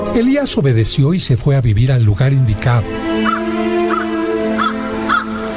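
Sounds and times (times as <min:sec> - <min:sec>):
speech: 0:00.2 - 0:03.7
crows cawing: 0:03.1 - 0:05.5.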